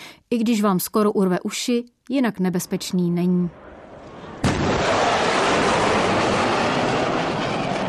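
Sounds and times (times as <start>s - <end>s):
speech: 0.3s - 3.7s
sonic boom of a supersonic jet: 3.6s - 7.8s.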